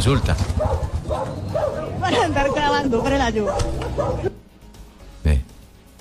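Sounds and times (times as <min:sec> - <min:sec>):
speech: 0:00.0 - 0:04.4
dog barking in short sharp yelps: 0:00.6 - 0:04.4.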